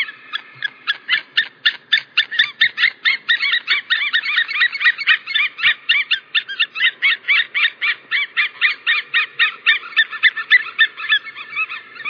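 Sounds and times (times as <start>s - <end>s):
white-tailed eagle yelping: 0.0s - 12.0s.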